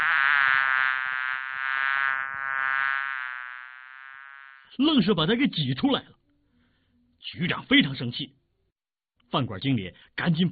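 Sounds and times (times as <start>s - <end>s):
many flies swarming and buzzing: 0.0s - 4.8s
speech: 4.8s - 6.2s, 7.3s - 8.4s, 9.3s - 10.4s.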